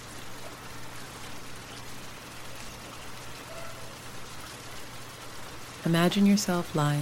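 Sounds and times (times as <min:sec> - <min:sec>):
soft steady rain pattering: 0:00.0 - 0:07.0
speech: 0:05.8 - 0:07.0.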